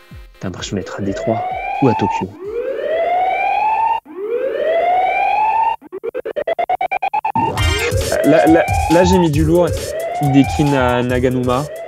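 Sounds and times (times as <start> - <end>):
speech: 0.4 - 2.4, 8.3 - 11.8
rising siren-like wails in video game music: 0.9 - 11.0, 11.6 - 11.8
rapid chopped stutter of the same tone: 7.2 - 10.8
noisy burst: 7.4 - 9.2.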